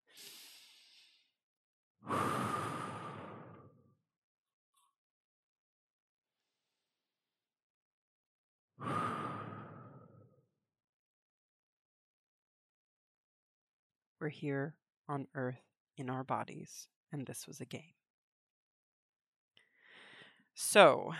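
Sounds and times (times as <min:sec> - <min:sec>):
slow deep breaths: 0:00.0 - 0:01.3, 0:02.1 - 0:03.8, 0:08.8 - 0:10.3, 0:19.6 - 0:20.5
speech: 0:14.2 - 0:18.0, 0:20.6 - 0:21.1.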